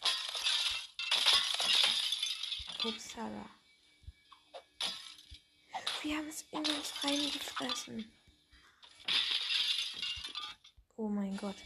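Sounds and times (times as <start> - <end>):
glass-like smashing of a picture being destroyed in a video game: 0.0 - 3.0, 6.6 - 8.0, 8.9 - 10.6
speech: 2.8 - 3.6, 6.0 - 8.2, 11.0 - 11.6.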